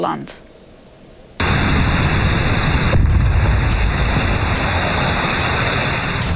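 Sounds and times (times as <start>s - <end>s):
speech: 0.0s - 0.5s
continuous heavy roar of a burning oxygen filling plant: 1.4s - 6.3s
explosion blast at a burning oxygen filling plant in Salihli Manisa: 1.4s - 6.3s.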